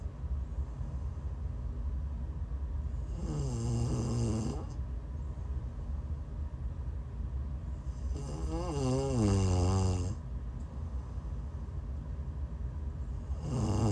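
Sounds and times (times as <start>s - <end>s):
steady low rumble: 0.0s - 9.4s, 10.1s - 13.9s
person snoring with rasping breaths: 3.0s - 4.8s, 7.9s - 10.2s, 13.2s - 13.9s.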